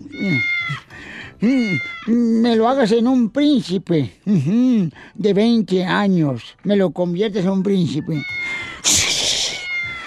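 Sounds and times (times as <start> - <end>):
cat meowing like a strained yowl: 0.0 - 0.9, 8.0 - 10.0
speech: 1.4 - 9.0.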